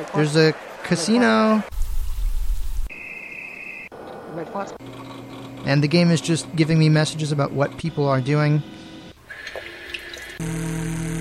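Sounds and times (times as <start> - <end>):
speech: 0.0 - 1.8, 4.4 - 8.8, 10.4 - 11.1
bubbling water in a video game: 9.2 - 10.4.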